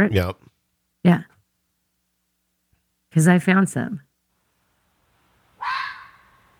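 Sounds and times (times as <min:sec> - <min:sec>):
speech: 0:00.0 - 0:01.3, 0:03.1 - 0:04.1
fox barking: 0:05.6 - 0:06.5.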